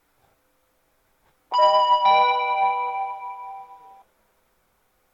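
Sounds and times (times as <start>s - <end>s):
limited express train at Shin-Sapporo station: 1.6s - 4.0s.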